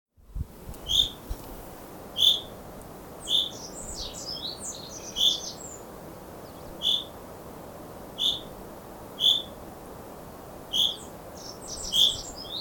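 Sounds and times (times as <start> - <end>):
Common chaffinch calls, Fringilla coelebs: 0.8 - 1.2, 2.1 - 2.6, 3.2 - 7.2, 8.2 - 8.6, 9.2 - 9.6, 10.7 - 12.5.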